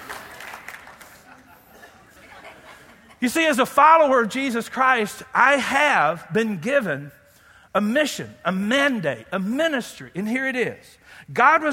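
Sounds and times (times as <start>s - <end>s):
audience clapping: 0.0s - 1.7s
laughter: 0.9s - 3.2s
speech: 3.2s - 11.7s.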